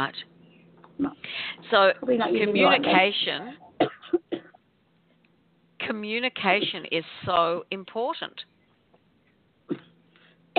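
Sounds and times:
speech: 0.0s - 0.3s, 1.0s - 3.9s, 5.9s - 8.5s
single short throaty cough: 3.8s - 4.6s.

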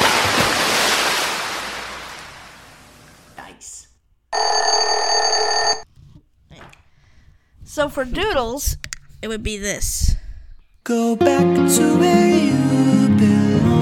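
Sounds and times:
swimming pool water splashing: 0.0s - 3.3s
bright ringing tone: 4.4s - 5.8s
speech: 7.8s - 10.1s, 10.8s - 13.4s.

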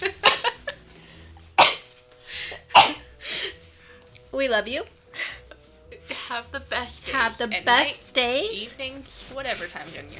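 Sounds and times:
person sneezing: 1.6s - 1.9s, 2.7s - 3.1s
speech: 4.4s - 5.0s, 6.3s - 10.1s.

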